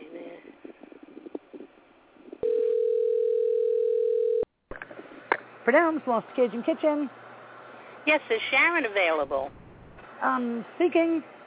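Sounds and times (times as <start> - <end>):
telephone dial tone while calling a restaurant: 2.4 - 4.5
speech: 5.7 - 7.2, 8.0 - 9.6, 10.2 - 11.3.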